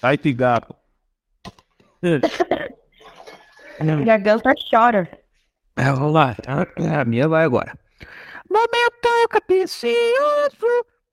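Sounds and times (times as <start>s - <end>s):
speech: 0.0s - 0.8s, 2.0s - 2.8s, 3.8s - 5.2s, 5.8s - 10.9s
person coughing harshly: 2.2s - 3.8s
raspy breathing: 7.9s - 8.5s.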